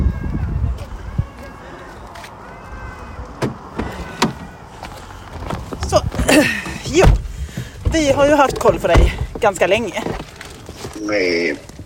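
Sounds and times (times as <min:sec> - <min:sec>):
rustling and shuffling of someone settling into a car: 0:00.2 - 0:11.8
thumps of a car door shutting: 0:03.4 - 0:04.5, 0:05.4 - 0:09.4
speech: 0:08.0 - 0:10.2, 0:11.0 - 0:11.7.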